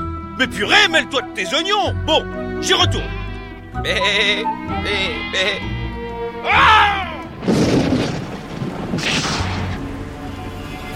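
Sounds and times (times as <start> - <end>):
speech: 0.4 - 5.7, 6.4 - 7.6
low storm rumble: 7.2 - 10.9
loud thunder crack on a stormy night: 7.3 - 10.2.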